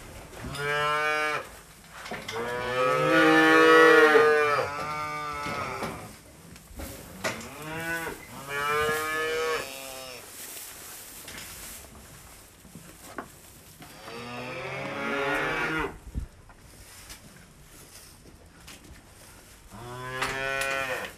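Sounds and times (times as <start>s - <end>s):
calves two to three months old mooing: 0.4s - 1.5s, 2.3s - 6.1s, 7.2s - 10.2s, 13.8s - 16.0s, 19.7s - 21.1s.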